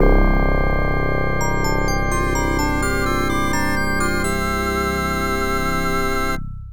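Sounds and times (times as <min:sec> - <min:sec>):
jingle: 0:00.0 - 0:06.4.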